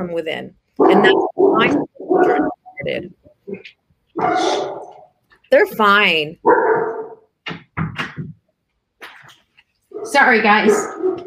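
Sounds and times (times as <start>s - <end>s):
speech: 0.0s - 4.8s, 5.5s - 6.7s, 10.0s - 11.0s
German Shepherds barking: 0.8s - 2.6s, 4.2s - 5.1s, 6.4s - 7.3s, 9.9s - 11.2s.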